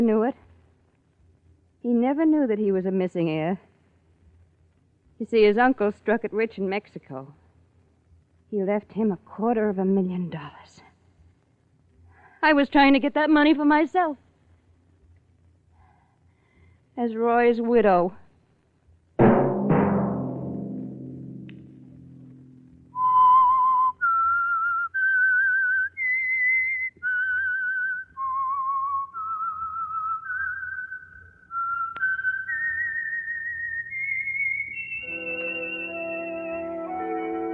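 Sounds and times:
speech: 0:00.0 - 0:00.4, 0:01.8 - 0:03.7, 0:05.2 - 0:07.4, 0:08.5 - 0:10.8, 0:12.4 - 0:14.2, 0:17.0 - 0:18.2
fuller musical accompaniment: 0:19.2 - 0:23.4, 0:34.8 - 0:37.5
short burst of louder tones: 0:19.2 - 0:23.9
whistled theme melody for a radio program: 0:22.8 - 0:37.5.

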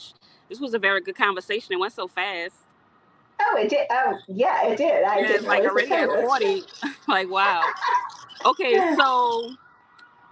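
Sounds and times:
speech: 0:00.5 - 0:02.7, 0:03.4 - 0:09.6
laughter: 0:05.2 - 0:09.5
emergency vehicle siren passing outside: 0:07.6 - 0:10.3.

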